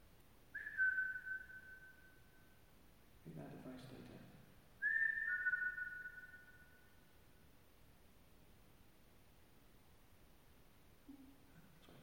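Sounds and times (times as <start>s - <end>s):
person whistling long steady notes: 0.6s - 1.9s, 4.8s - 6.3s.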